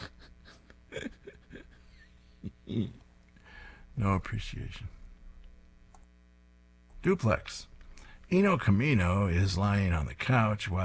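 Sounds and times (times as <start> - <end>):
speech: 1.0 - 1.3, 2.7 - 3.0, 4.0 - 5.0, 7.0 - 7.7, 8.3 - 10.8
low gravelly burp: 2.4 - 3.1.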